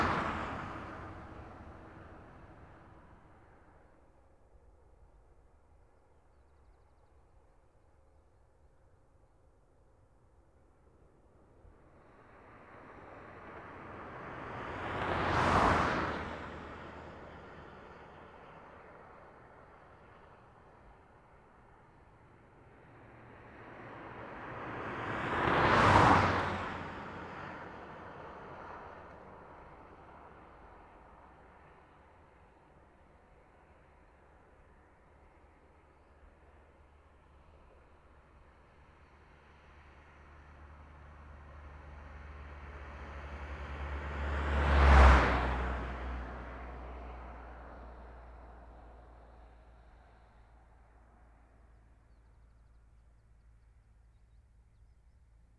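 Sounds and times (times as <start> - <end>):
passing traffic on a country road: 0.0 - 3.4, 12.2 - 18.9, 22.8 - 31.0, 38.8 - 52.0.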